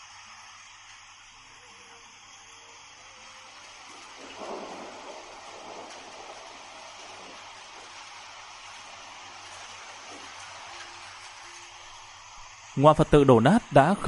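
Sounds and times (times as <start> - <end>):
heavy rain pouring down in a thunderstorm: 0.0 - 14.0
low continuous thunder rumble: 3.3 - 12.0
speech: 12.8 - 14.0.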